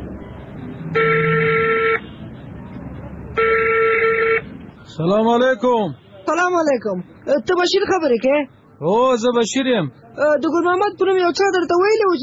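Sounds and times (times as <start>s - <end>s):
phone ringing tones: 0.9s - 2.1s, 3.4s - 4.5s
speech: 5.0s - 12.2s.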